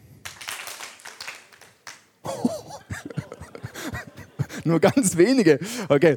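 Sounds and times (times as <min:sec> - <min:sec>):
small group of people clapping hands: 0:00.1 - 0:02.6
laughter: 0:02.3 - 0:05.6
speech: 0:04.7 - 0:06.1.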